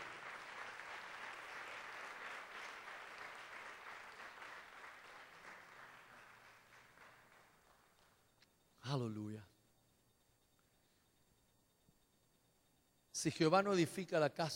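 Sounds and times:
church congregation applause during a worship service: 0.0 - 8.2
speech: 8.9 - 9.5, 13.2 - 14.5.

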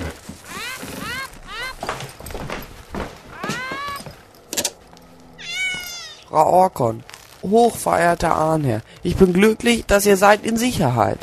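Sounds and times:
rustling: 0.0 - 11.2
cat meowing: 0.5 - 1.9, 3.3 - 4.2, 5.4 - 6.3
speech: 6.3 - 11.2.

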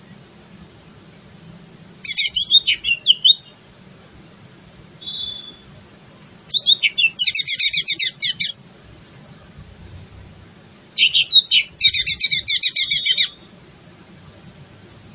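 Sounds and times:
leafbird song of trilled chattering notes and swooping whistles: 2.0 - 3.7, 5.0 - 5.8, 6.5 - 14.8.

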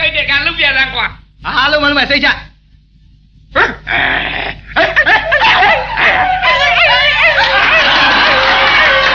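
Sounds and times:
speech: 0.2 - 2.5
person imitating a big dog barking and growling: 3.5 - 7.3
laughter: 4.4 - 9.1.

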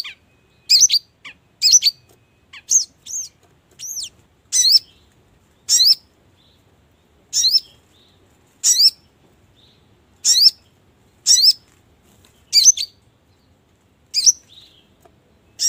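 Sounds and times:
Brown-throated sunbird giving sharp high chirps with quick sweeps: 0.0 - 5.0, 5.6 - 6.1, 7.3 - 7.8, 8.6 - 9.0, 10.2 - 11.7, 12.5 - 13.0, 14.1 - 14.7.

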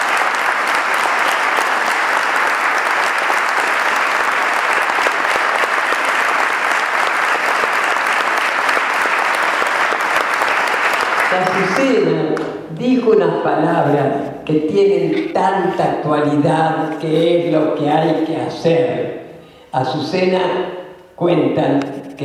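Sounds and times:
audience applause at a commemorative talk: 0.0 - 12.5
speech: 11.4 - 22.2.

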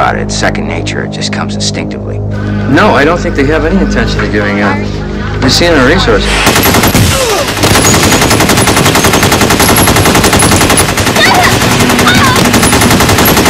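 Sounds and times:
speech: 0.0 - 7.0
loud automatic gunfire from a bank shootout: 6.4 - 13.4.

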